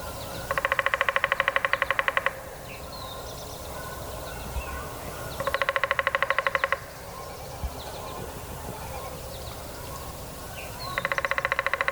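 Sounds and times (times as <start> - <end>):
downy woodpecker drumming on hollow wood: 0.0 - 2.7, 5.4 - 7.0, 10.8 - 11.9
soft outdoor ambience: 0.0 - 11.9.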